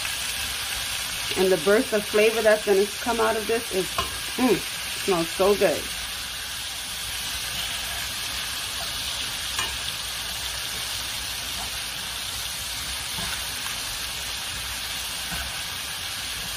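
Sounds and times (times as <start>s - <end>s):
ingredients for jerk shrimp rasta pasta sizzling and crackling in a pan: 0.0s - 16.5s
speech: 1.3s - 6.0s
stirring scrapes in a pan: 7.1s - 15.9s.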